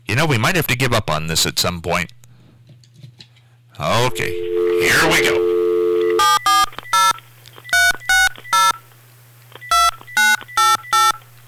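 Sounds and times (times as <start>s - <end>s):
speech: 0.2s - 2.2s, 3.8s - 5.5s
outgoing phone call ringing through the line: 3.9s - 11.4s.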